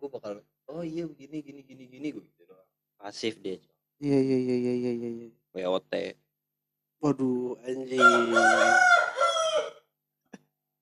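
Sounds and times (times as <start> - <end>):
speech: 3.1 - 4.7
rooster crowing: 7.9 - 9.9.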